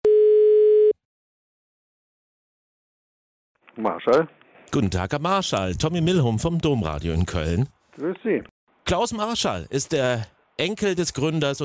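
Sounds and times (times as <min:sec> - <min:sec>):
telephone ringback tone while placing a call: 0:00.1 - 0:01.0
speech: 0:03.8 - 0:11.6.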